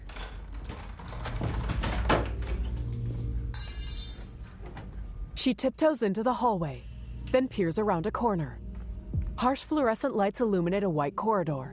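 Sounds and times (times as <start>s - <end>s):
door being eased open slowly and carefully: 0.0s - 3.5s
speech: 5.4s - 8.6s, 9.4s - 11.7s.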